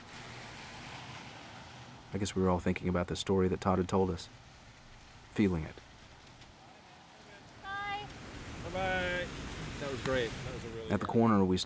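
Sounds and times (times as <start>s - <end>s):
water splashing in sidewalk puddles: 0.0s - 2.1s, 4.3s - 10.8s
steady rain falling on a sidewalk: 0.0s - 11.0s
speech: 2.1s - 4.4s, 5.4s - 5.8s, 10.0s - 11.6s.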